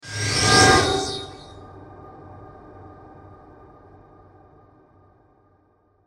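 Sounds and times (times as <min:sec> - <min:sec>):
metallic distorted musical whoosh with sustain and reverb: 0:00.0 - 0:01.6.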